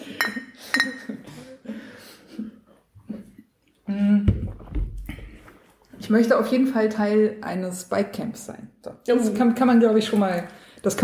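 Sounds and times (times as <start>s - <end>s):
breathing close to the microphone: 0.0s - 2.7s, 10.5s - 10.9s
glasses clinking in a toast: 0.1s - 1.2s
speech: 6.1s - 11.0s.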